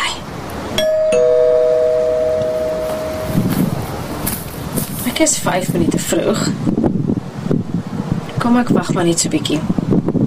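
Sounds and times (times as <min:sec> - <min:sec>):
steady outdoor hiss: 0:00.0 - 0:10.2
house doorbell chiming two tones: 0:00.8 - 0:03.6
speech: 0:05.2 - 0:06.7, 0:08.5 - 0:09.8.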